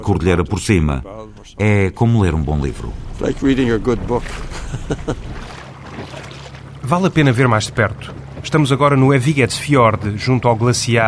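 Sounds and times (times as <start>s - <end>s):
speech: 0.0s - 5.5s, 6.9s - 11.0s
small motorized rubber boat engine drone on fjord water: 1.3s - 11.0s
rushing water noise: 2.5s - 11.0s
laughter: 4.3s - 5.6s.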